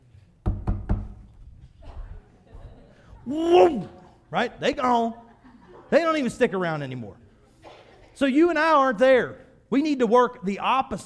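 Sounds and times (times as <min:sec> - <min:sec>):
knocking on a door: 0:00.4 - 0:01.2
laughter: 0:01.8 - 0:06.3
speech: 0:03.3 - 0:05.2, 0:05.9 - 0:07.2, 0:08.2 - 0:11.0.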